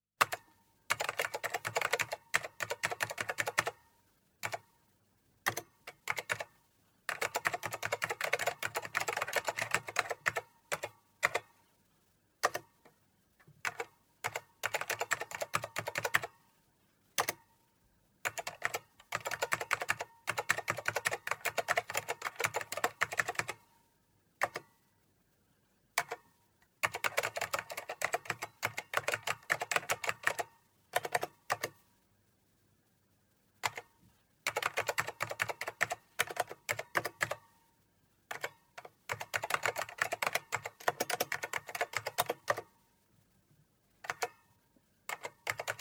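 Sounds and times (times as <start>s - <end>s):
typing on a computer keyboard: 0.2s - 4.7s, 5.4s - 11.6s, 12.4s - 12.9s, 13.6s - 16.4s, 17.2s - 17.4s, 18.2s - 23.7s, 24.4s - 24.8s, 26.0s - 31.8s, 33.6s - 37.5s, 38.3s - 42.7s, 44.0s - 44.5s, 45.1s - 45.7s.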